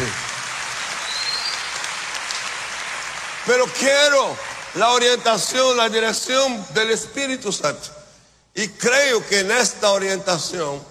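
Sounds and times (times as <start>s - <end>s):
applause from a church congregation: 0.0s - 5.0s
speech: 3.4s - 8.0s, 8.6s - 10.8s.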